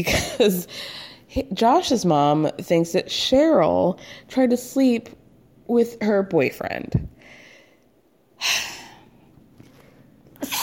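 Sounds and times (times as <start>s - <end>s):
speech: 0.0s - 7.1s, 8.4s - 8.8s
quiet breathing: 7.1s - 10.2s
loud sneeze: 10.4s - 10.6s.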